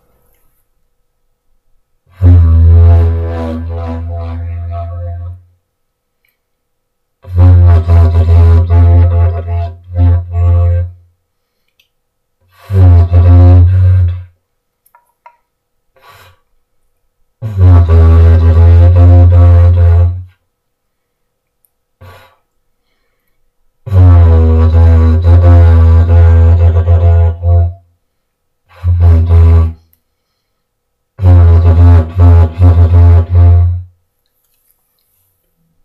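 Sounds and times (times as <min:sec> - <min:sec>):
didgeridoo playing: 0:02.1 - 0:05.4, 0:07.2 - 0:11.0, 0:12.6 - 0:14.3, 0:17.4 - 0:20.3, 0:23.9 - 0:27.8, 0:28.7 - 0:29.8, 0:31.2 - 0:33.8.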